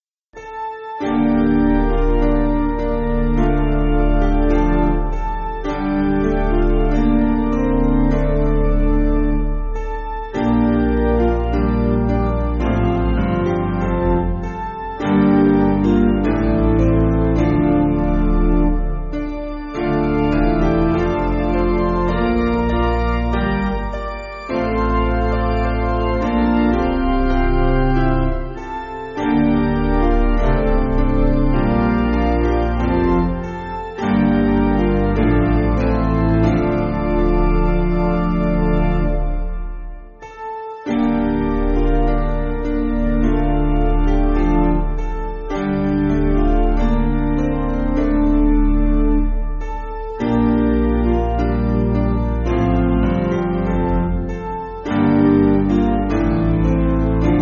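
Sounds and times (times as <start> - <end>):
piano: 0.0 - 57.4.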